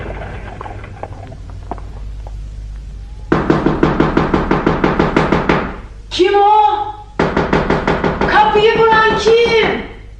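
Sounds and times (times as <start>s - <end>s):
loud rapid knocking on a house door: 3.3s - 5.8s, 7.2s - 9.9s.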